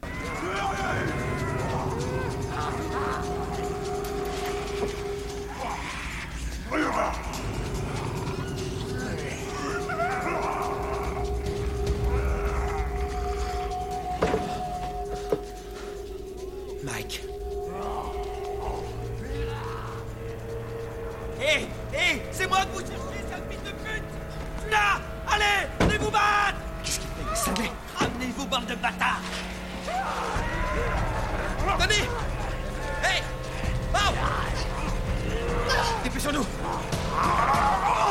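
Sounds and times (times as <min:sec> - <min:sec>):
human voices of homeless film characters growling, grunting and yelping like animals: 0:00.0 - 0:15.0, 0:17.2 - 0:22.4, 0:29.0 - 0:38.0
steady droning hum: 0:00.4 - 0:38.0.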